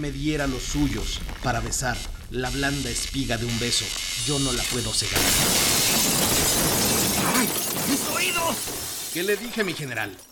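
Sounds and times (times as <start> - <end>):
speech: 0.0 - 5.6, 8.5 - 10.3
office windows shattering: 5.2 - 10.3.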